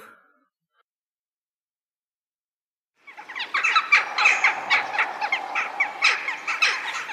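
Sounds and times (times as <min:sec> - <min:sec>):
flock of jackdaws calling: 0:03.0 - 0:07.1.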